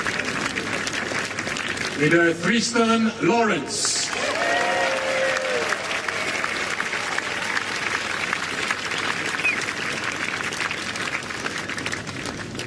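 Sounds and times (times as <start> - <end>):
large crowd applauding: 0.0 - 12.6
speech: 2.0 - 4.0
crowd cheers and whistles: 4.1 - 7.9, 8.9 - 10.0.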